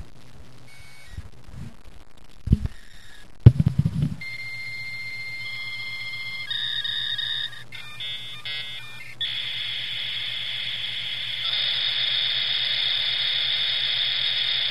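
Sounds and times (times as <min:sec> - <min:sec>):
modem sounds of a failed connection: 0:00.7 - 0:01.3, 0:03.9 - 0:14.6.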